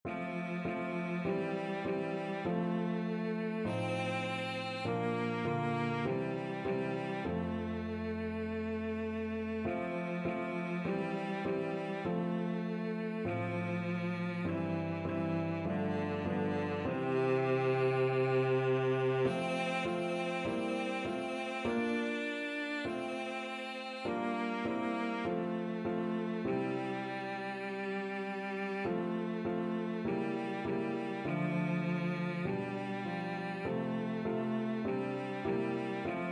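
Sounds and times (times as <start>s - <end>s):
cello: 0.0s - 36.3s.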